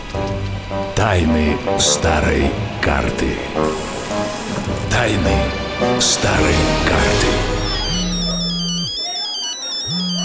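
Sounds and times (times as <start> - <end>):
speech: 1.0 - 3.9, 4.5 - 7.6
mobile phone ringing with a steady electronic tone: 7.5 - 10.2.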